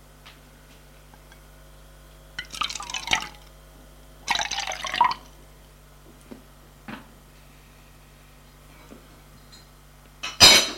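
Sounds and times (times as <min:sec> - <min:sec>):
water running into a saucepan in a kitchen: 0:02.4 - 0:03.5, 0:04.3 - 0:05.3.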